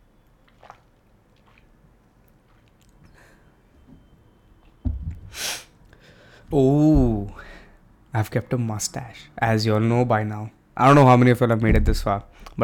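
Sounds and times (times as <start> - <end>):
soft thud of a cup or bottle being picked up: 4.8 - 5.4
speech: 6.5 - 7.1, 8.2 - 12.6.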